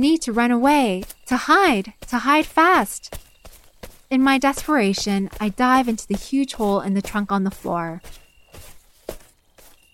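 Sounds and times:
speech: 0.0 - 3.2, 4.1 - 8.2
brisk footsteps: 0.0 - 9.9.

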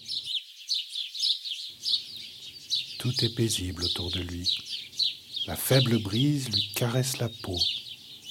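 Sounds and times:
several birds chirping and twittering: 0.0 - 8.2
speech: 3.0 - 4.7, 5.5 - 7.8.

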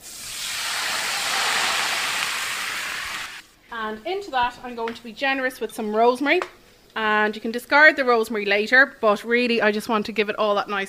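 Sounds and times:
Pinot Grigio white wine deglazing a hot pan: 0.0 - 3.4
speech: 3.8 - 10.8.

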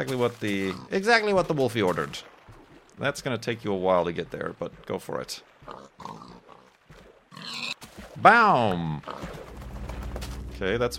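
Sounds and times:
speech: 0.0 - 2.3, 3.0 - 6.3, 8.2 - 9.4, 10.6 - 10.9
pigs grunting and oinking: 0.4 - 1.1, 5.6 - 7.8, 8.7 - 9.4
pig squealing oink: 5.7 - 6.7, 7.3 - 7.8.

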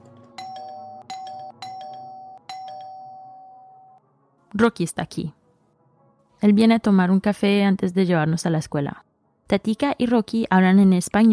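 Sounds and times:
doorbell ringing with sharp electronic chimes: 0.0 - 4.0
speech: 4.6 - 5.4, 6.4 - 11.3.

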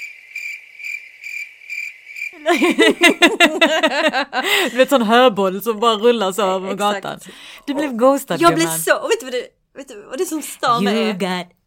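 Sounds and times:
crickets trilling: 0.0 - 2.4
speech: 2.3 - 11.6
laughter: 2.4 - 5.0.

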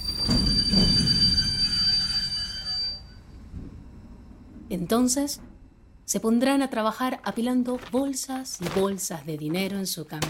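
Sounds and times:
train clunk and hum: 0.0 - 2.6, 3.2 - 6.4
train brakes squealing at a railroad crossing: 0.0 - 3.4
train rumbling at a railroad crossing: 0.0 - 8.1
speech: 4.7 - 10.2.

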